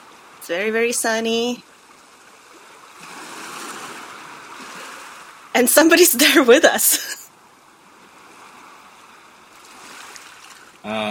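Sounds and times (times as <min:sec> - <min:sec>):
ocean waves washing over a beach: 0:00.0 - 0:11.0
speech: 0:00.5 - 0:01.7, 0:05.6 - 0:07.2.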